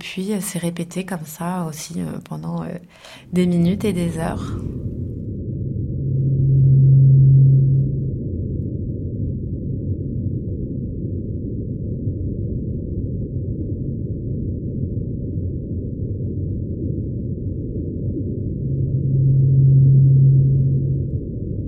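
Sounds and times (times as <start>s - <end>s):
speech: 0.1s - 4.9s
constant murky underwater rumble: 3.0s - 21.6s
low whale call of unidentified species: 6.0s - 8.2s, 18.7s - 21.2s.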